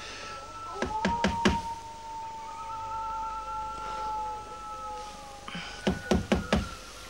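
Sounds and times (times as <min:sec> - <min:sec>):
steady tonal drone: 0:00.0 - 0:07.0
knocking on an open front door: 0:00.8 - 0:01.6, 0:05.8 - 0:06.8.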